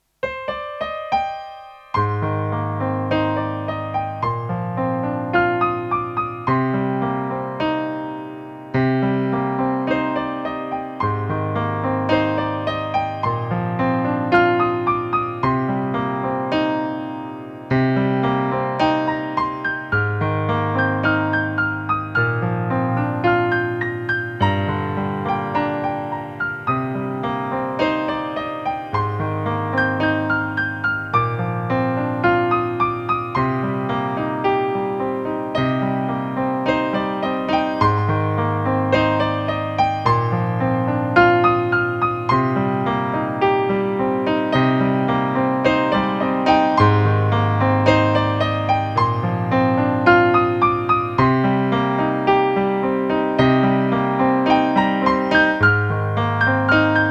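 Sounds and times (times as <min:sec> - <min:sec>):
night piano: 0:00.0 - 0:57.1.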